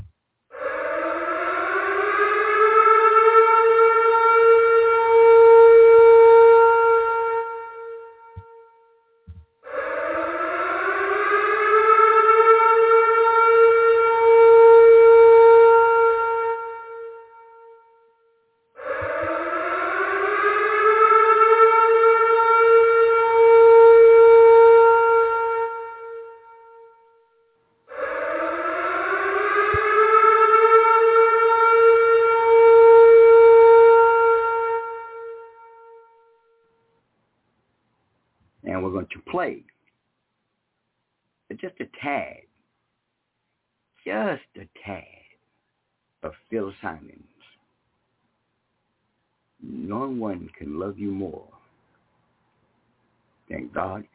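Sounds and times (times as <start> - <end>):
loud civil defense siren wailing: 0.0 - 37.0, 49.6 - 51.7, 53.5 - 54.1
speech: 41.6 - 42.4.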